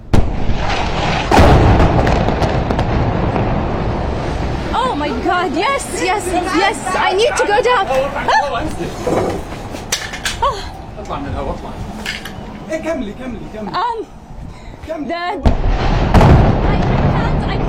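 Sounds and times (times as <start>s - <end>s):
bomb explosions from an airstrike on Gaza: 0.0s - 6.5s, 15.4s - 17.6s
rumbling, crackling wash of debris: 0.0s - 6.9s, 15.5s - 17.6s
woman journalist talking urgently on a rooftop: 4.7s - 8.5s, 16.5s - 17.6s
speech: 5.2s - 9.5s, 10.4s - 11.9s, 12.7s - 14.2s, 14.9s - 15.8s.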